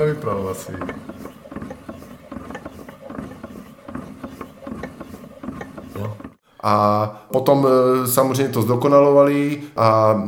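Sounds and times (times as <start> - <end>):
speech: 0.0 - 1.3, 6.6 - 10.2
hand-cranked Holstein-type butter churn gears and ratchet clicking and grinding: 0.0 - 6.4.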